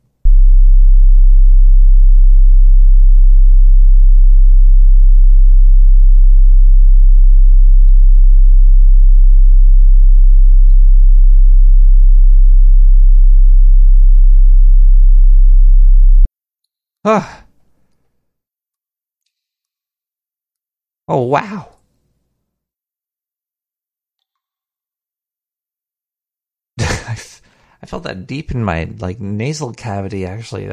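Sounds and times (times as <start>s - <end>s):
thirty-three hertz low-frequency test tone: 0.3s - 16.3s
speech: 17.0s - 17.4s, 21.1s - 21.8s, 27.2s - 30.7s.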